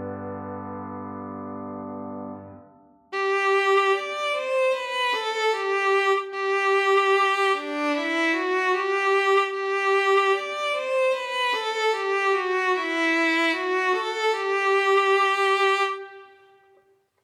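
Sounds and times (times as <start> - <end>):
violin in G major: 3.1 - 16.7.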